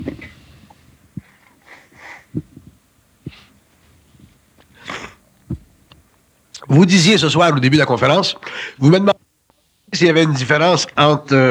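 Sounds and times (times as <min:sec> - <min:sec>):
person with a slight cold blowing nose: 0:00.0 - 0:05.8
speech: 0:06.7 - 0:09.2, 0:10.0 - 0:11.4.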